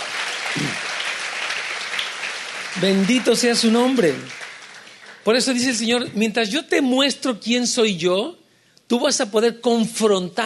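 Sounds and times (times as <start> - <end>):
church congregation applauding: 0.0 - 5.7
speech: 2.8 - 4.4, 5.2 - 10.4.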